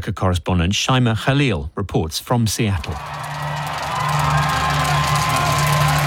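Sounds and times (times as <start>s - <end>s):
speech: 0.0s - 3.3s
large crowd of football fans cheering and shouting outdoors at a fan zone: 2.8s - 6.0s.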